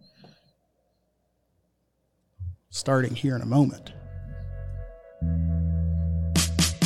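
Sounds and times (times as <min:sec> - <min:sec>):
low synth tone: 0:02.4 - 0:02.7, 0:03.9 - 0:06.5
speech: 0:02.7 - 0:04.0
sustained buzzy bass chord: 0:04.0 - 0:06.8.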